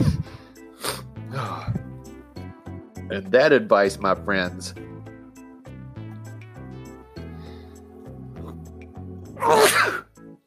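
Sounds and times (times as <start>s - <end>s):
bright steady musical backing: 0.0s - 10.4s
speech: 3.1s - 4.9s
loud explosive sneeze: 9.4s - 10.1s.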